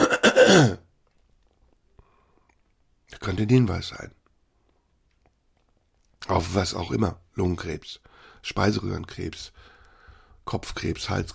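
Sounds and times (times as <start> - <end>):
rough throat clearing rolling into a cough-like rasp: 0.0 - 0.8
speech: 0.5 - 0.8, 3.2 - 4.2, 6.2 - 9.7, 10.4 - 11.3.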